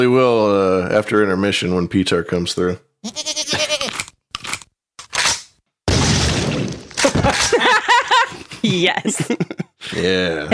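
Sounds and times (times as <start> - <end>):
speech: 0.0 - 3.6, 8.7 - 10.5
video game goat bleating: 3.0 - 4.1
wet crunching and splattering of video game goat being killed: 5.9 - 7.5
laughter: 7.0 - 10.0.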